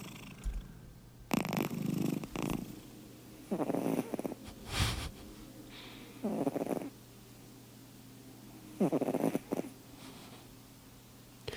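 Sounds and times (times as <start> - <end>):
cat snoring: 0.0 - 2.9, 3.5 - 5.1, 6.2 - 7.0, 8.8 - 9.7.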